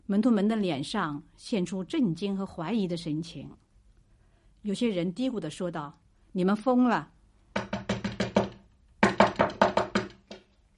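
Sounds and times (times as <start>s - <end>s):
speech: 0.1s - 3.6s, 4.6s - 7.2s
loud urgent knocking on a door: 7.5s - 10.4s.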